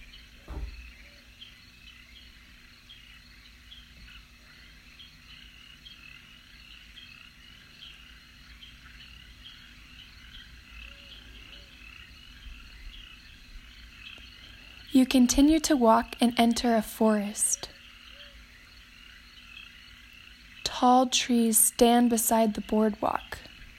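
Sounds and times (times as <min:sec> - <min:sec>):
crickets chirping outdoors: 0:00.0 - 0:23.7
frogs calling outdoors: 0:00.0 - 0:23.7
brief thump: 0:00.4 - 0:00.8
speech: 0:15.0 - 0:17.6, 0:20.8 - 0:23.5.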